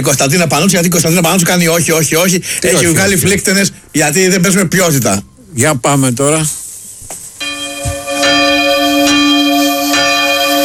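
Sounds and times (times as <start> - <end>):
speech: 0.0 - 6.6
church bells ringing: 7.4 - 10.6.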